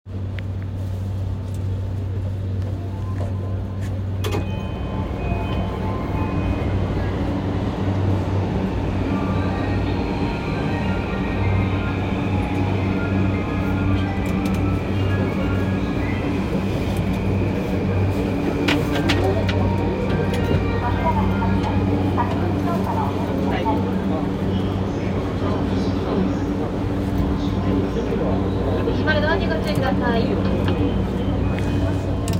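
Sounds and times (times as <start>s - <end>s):
Yamanote Line train at Meguro running clockwise: 0.1s - 32.3s.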